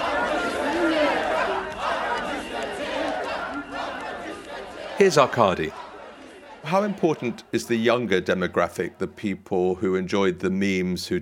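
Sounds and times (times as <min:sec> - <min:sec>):
people shouting: 0:00.0 - 0:07.4
crowd of protesters singing while dancing: 0:00.0 - 0:09.4
people chattering: 0:00.0 - 0:11.1
speech: 0:05.0 - 0:05.8, 0:06.6 - 0:11.1.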